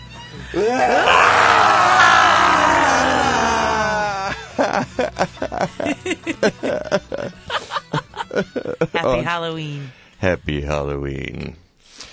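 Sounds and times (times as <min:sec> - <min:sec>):
speech: 0:00.4 - 0:01.3, 0:09.0 - 0:11.6
several people screaming in a studio: 0:00.5 - 0:04.8
bursts of laughter in a studio: 0:00.6 - 0:08.9.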